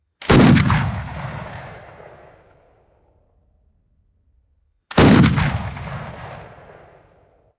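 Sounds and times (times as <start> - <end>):
vintage muzzle loading rifle gunshots: 0.2 - 2.4, 4.9 - 7.2.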